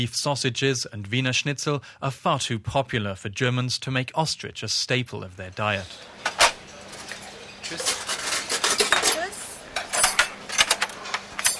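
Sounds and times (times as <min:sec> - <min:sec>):
speech: 0:00.0 - 0:06.1, 0:07.7 - 0:08.0
dishes and cutlery clinking in a company cafeteria in Cologne: 0:05.8 - 0:11.5.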